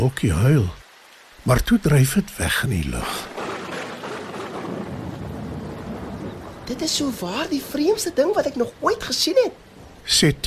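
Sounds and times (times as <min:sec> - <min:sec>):
speech: 0:00.0 - 0:00.8, 0:01.4 - 0:03.3, 0:06.7 - 0:10.4
heavy rain pouring: 0:00.0 - 0:10.4.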